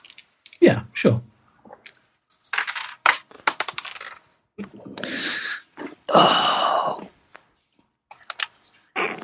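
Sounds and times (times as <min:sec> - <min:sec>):
speech: 0:00.7 - 0:01.3, 0:06.2 - 0:06.4
dice clattering across a hard tabletop: 0:01.8 - 0:04.3.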